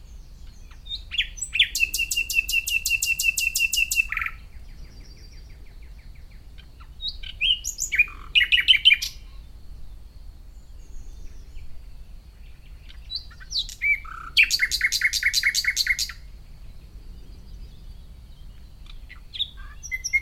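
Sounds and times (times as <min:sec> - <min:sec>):
soft low background hum: 0:00.0 - 0:02.7, 0:04.0 - 0:20.1
common nightingale Luscinia megarhynchos singing: 0:00.0 - 0:20.1.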